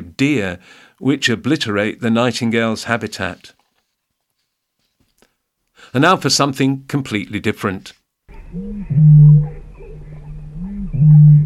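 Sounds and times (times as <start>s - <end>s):
speech: 0.2s - 3.6s, 5.9s - 9.6s
booming call of a bittern, a large heron-like bird: 8.3s - 11.4s.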